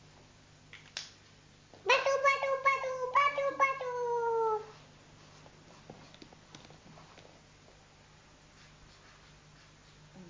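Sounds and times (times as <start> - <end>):
cat meowing: 1.9 - 4.7.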